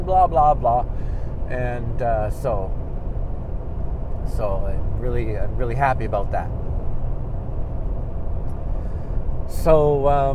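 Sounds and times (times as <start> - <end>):
car driving on a highway with road rumble: 0.0 - 10.3
speech: 0.1 - 2.8, 4.3 - 6.6, 9.5 - 10.3.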